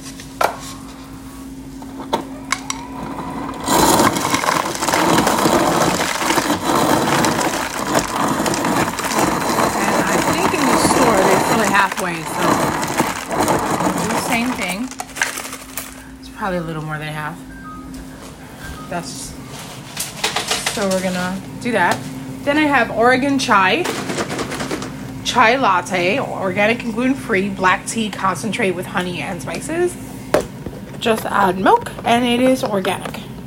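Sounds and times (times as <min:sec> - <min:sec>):
refrigerator dispenser grinding and pouring crushed ice into a cup: 0:02.5 - 0:16.2, 0:23.7 - 0:25.0
speech: 0:16.5 - 0:17.5, 0:18.9 - 0:19.4, 0:20.8 - 0:24.0, 0:25.2 - 0:30.0, 0:31.0 - 0:33.2.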